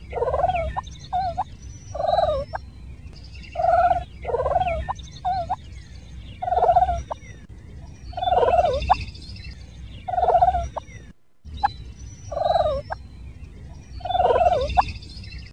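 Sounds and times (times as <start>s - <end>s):
turkey purring: 0.0s - 2.6s, 3.5s - 5.6s, 6.4s - 7.3s, 8.1s - 9.0s, 10.1s - 10.8s, 12.3s - 13.0s, 14.0s - 15.0s.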